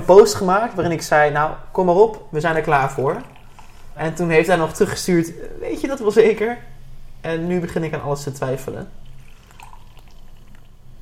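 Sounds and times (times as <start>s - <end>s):
speech: 0.1s - 3.3s, 4.0s - 9.0s
dark beer pouring into a mug: 2.6s - 5.0s, 8.8s - 11.0s.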